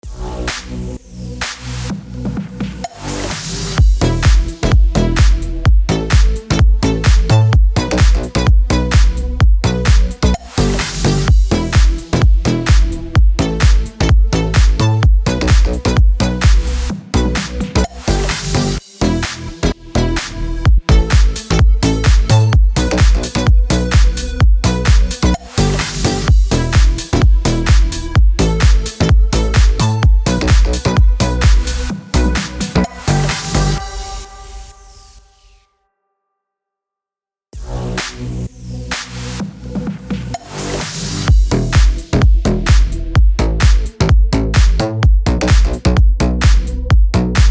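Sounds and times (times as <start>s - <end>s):
house music bed slap in E minor: 0.0s - 34.8s, 37.6s - 47.4s.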